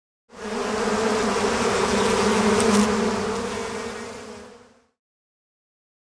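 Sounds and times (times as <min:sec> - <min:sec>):
bees buzzing: 0:00.3 - 0:04.9.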